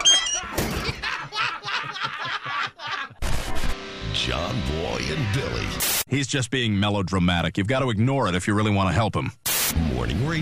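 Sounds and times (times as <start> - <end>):
door shutting with a solid thunk: 0.0 - 1.0
person laughing with a rhythmic snicker: 0.3 - 3.2
speech: 4.3 - 10.4.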